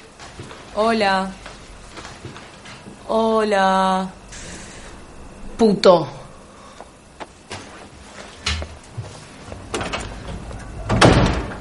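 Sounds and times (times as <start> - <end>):
speech: 0.8 - 1.4, 3.1 - 4.2, 5.6 - 6.2
door closing with a thud: 9.7 - 11.5.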